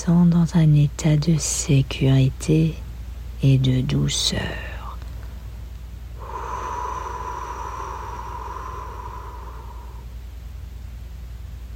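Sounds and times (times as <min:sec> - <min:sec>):
speech: 0:00.0 - 0:02.8, 0:03.4 - 0:04.7
low hum: 0:00.0 - 0:11.7
deep breath during a breathing exercise: 0:06.2 - 0:10.2.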